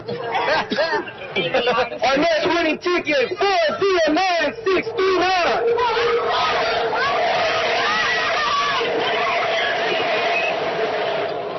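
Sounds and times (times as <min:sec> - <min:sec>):
laughter: 0:00.0 - 0:02.2
speech: 0:00.0 - 0:05.7
large outdoor crowd cheering at a holiday bike giveaway raffle on 7th Street in West Oakland: 0:03.5 - 0:11.5
BART train roaring by in West Oakland: 0:04.4 - 0:11.5
people whooping and yelling in an outdoor crowd: 0:05.2 - 0:11.5.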